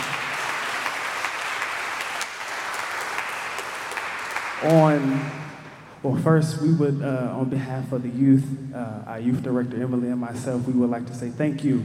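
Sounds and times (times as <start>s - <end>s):
audience applauding for the youth: 0.0s - 5.9s
speech: 4.6s - 11.8s.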